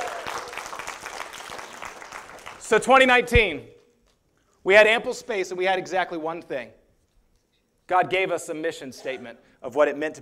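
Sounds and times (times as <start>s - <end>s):
room full of people clapping: 0.0s - 3.1s
speech: 2.7s - 3.7s, 4.6s - 6.8s, 7.9s - 10.2s.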